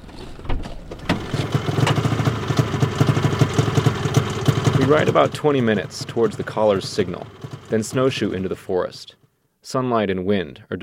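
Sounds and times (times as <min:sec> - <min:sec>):
heavy thuds and clunks of snowmobiles being unloaded: 0:00.1 - 0:05.2
trucks idling by a road on a cold February morning: 0:01.1 - 0:08.8
speech: 0:04.9 - 0:10.8.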